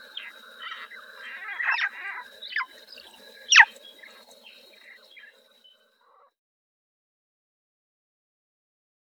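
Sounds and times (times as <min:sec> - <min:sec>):
steady high tonal hums: 0:00.0 - 0:05.6
Swinhoe's frog Rana swinhoana chirps: 0:00.0 - 0:06.3.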